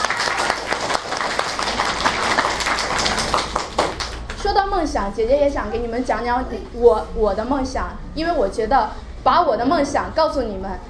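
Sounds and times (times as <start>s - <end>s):
room full of people clapping: 0.0s - 4.4s
speech: 4.6s - 10.8s.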